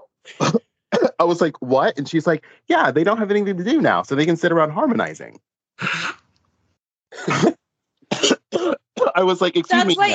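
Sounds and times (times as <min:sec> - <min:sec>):
person coughing and choking in shock at a rude remark: 0:00.3 - 0:01.2, 0:07.1 - 0:09.2
speech: 0:01.3 - 0:06.0, 0:09.2 - 0:10.1.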